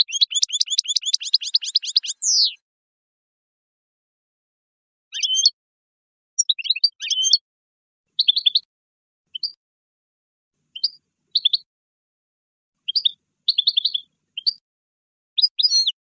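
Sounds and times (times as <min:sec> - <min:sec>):
European goldfinch singing: 0:00.0 - 0:02.6, 0:05.2 - 0:05.6, 0:06.4 - 0:07.4, 0:08.2 - 0:08.7, 0:09.3 - 0:09.6, 0:10.7 - 0:11.7, 0:12.8 - 0:14.6, 0:15.4 - 0:16.0.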